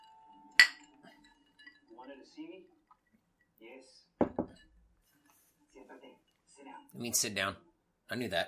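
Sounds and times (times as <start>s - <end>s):
glasses clinking in a tequila toast: 0.0s - 1.9s
speech: 2.0s - 2.8s, 3.6s - 4.7s, 5.8s - 8.4s.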